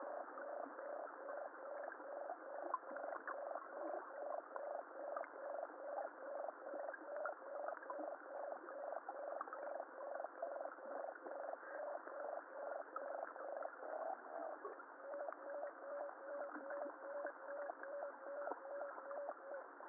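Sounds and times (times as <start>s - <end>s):
sonar-like biological sound: 0.0s - 19.7s.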